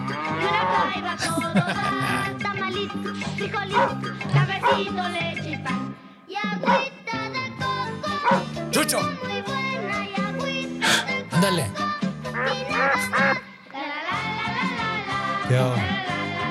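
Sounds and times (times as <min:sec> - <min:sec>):
loud drawn-out cow moos: 0:00.0 - 0:01.0
busy musical backing: 0:00.0 - 0:06.5, 0:07.2 - 0:16.5
laughter: 0:00.4 - 0:02.5
speech: 0:03.4 - 0:06.9, 0:08.7 - 0:09.6, 0:11.4 - 0:11.8
brief dog barks: 0:03.7 - 0:04.9, 0:06.6 - 0:06.9, 0:08.1 - 0:08.5.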